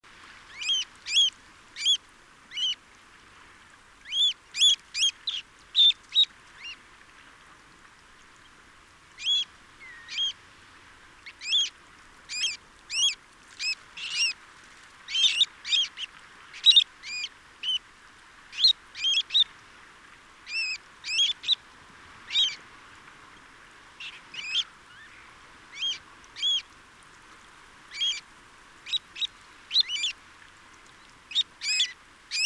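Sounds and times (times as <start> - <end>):
dunlin Calidris alpina alpina: 0.5 - 2.8, 4.0 - 6.8, 9.2 - 10.4, 11.2 - 11.7, 12.3 - 14.4, 15.1 - 17.8, 18.5 - 19.5, 20.5 - 21.6, 22.3 - 22.6, 24.0 - 26.7, 27.9 - 28.2, 28.8 - 30.2, 31.3 - 32.4.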